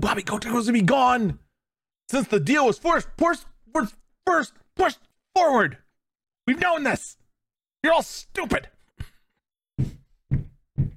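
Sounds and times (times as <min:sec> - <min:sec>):
speech: 0:00.0 - 0:01.4, 0:02.1 - 0:05.8, 0:06.5 - 0:07.2, 0:07.8 - 0:08.8
dull heavy knocks from upstairs through a ceiling: 0:09.8 - 0:10.9.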